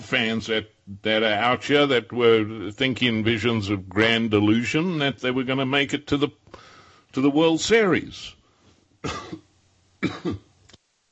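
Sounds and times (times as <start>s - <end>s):
speech: 0.1s - 8.4s, 9.0s - 9.4s, 10.0s - 10.5s
person coughing: 9.0s - 10.5s.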